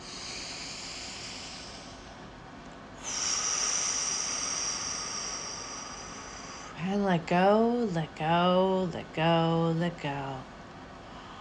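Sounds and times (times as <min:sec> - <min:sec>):
long deep breath drawn in: 0:00.0 - 0:02.2, 0:03.0 - 0:06.8
speech: 0:06.8 - 0:10.5.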